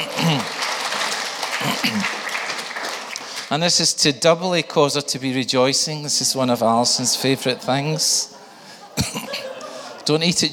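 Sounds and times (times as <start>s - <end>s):
laughter: 0.0s - 0.8s, 6.8s - 10.5s
crowd applauding: 0.0s - 3.7s
speech: 1.8s - 2.2s, 3.5s - 8.3s, 10.1s - 10.5s.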